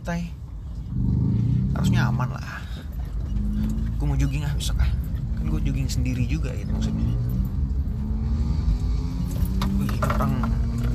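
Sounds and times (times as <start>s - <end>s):
speech: 0.0s - 0.4s, 1.8s - 2.8s, 3.5s - 7.4s, 10.0s - 10.6s
small car's loud sporty exhaust droning: 0.0s - 10.9s.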